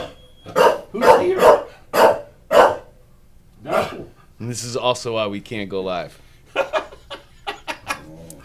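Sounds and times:
dog barking: 0.0 - 2.9, 3.6 - 4.1
speech: 4.4 - 6.2.

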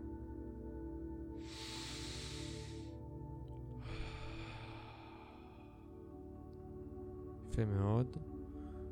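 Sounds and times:
soft steady musical drone: 0.0 - 8.9
deep breath in through nose and out through mouth: 1.2 - 6.4, 8.4 - 8.9
speech: 7.6 - 8.4.

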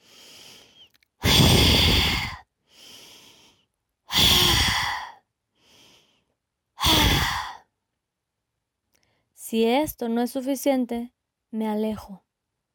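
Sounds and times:
deep breathing exercise: 0.0 - 7.6
speech: 9.5 - 12.2.

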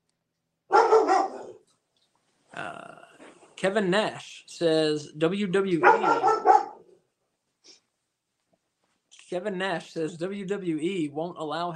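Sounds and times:
dog barking and growling: 0.7 - 1.7, 5.8 - 7.0
speech: 3.6 - 6.5, 9.3 - 11.7.

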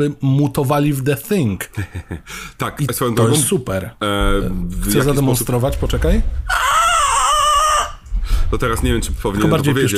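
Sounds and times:
speech: 0.0 - 6.7, 8.5 - 9.9
laughter: 1.7 - 2.3
faint low rumble: 4.2 - 9.9
recorded pig squeal from a slaughterhouse: 6.4 - 8.1.

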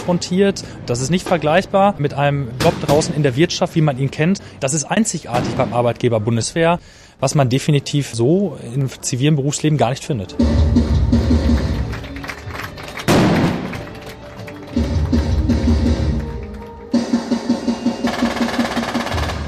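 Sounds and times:
speech: 0.0 - 11.8
driving rhythmic music: 10.3 - 19.4
bursts of gunfire: 13.1 - 13.8, 18.0 - 19.4.

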